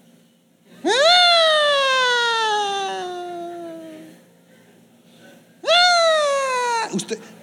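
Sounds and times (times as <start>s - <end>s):
voice imitating an ambulance siren: 0.8s - 4.1s, 5.6s - 7.1s
speech: 7.0s - 7.4s.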